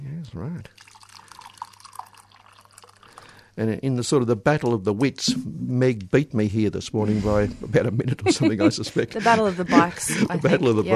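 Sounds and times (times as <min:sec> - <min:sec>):
speech: 0:00.3 - 0:00.8, 0:03.6 - 0:10.9
tea pouring into a cup: 0:00.6 - 0:03.7
laughter: 0:07.2 - 0:10.9.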